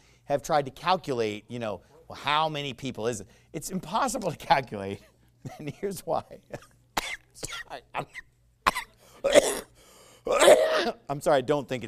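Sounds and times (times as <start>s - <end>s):
speech: 0.3s - 6.8s, 7.4s - 8.3s, 9.2s - 9.7s, 10.3s - 11.8s
person with a lingering post-illness cough coughing harshly: 6.5s - 9.7s, 10.3s - 11.0s.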